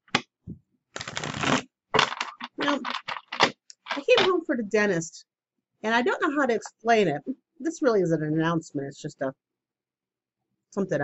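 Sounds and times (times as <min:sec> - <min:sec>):
deck of oracle cards being shuffled: 0:01.0 - 0:04.3
speech: 0:04.1 - 0:09.4, 0:10.7 - 0:11.0.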